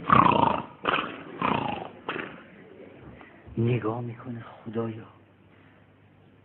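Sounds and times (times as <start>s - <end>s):
person snoring loudly while asleep: 0.0s - 2.4s
speech: 3.6s - 5.2s.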